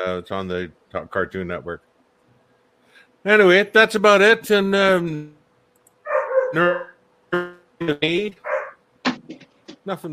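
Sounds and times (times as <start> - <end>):
speech: 0.0 - 1.9, 3.2 - 5.4, 6.5 - 8.5, 9.8 - 10.1
pet dog barking indoors: 6.1 - 7.0, 8.4 - 8.8.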